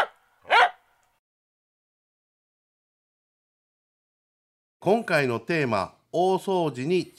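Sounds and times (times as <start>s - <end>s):
dog barking: 0.0s - 0.8s
speech: 4.8s - 7.1s.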